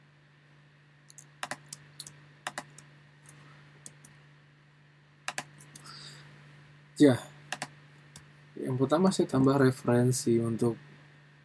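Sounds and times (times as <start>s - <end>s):
computer keyboard typing during a copy and paste: 1.1s - 2.8s, 5.3s - 5.8s, 7.5s - 7.7s
speech: 7.0s - 7.3s, 8.6s - 10.9s.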